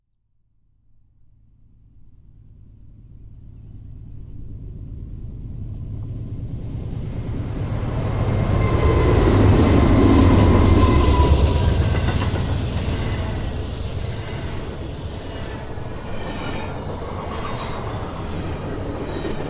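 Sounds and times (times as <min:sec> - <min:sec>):
long CN Rail freight train: 0:01.6 - 0:19.4.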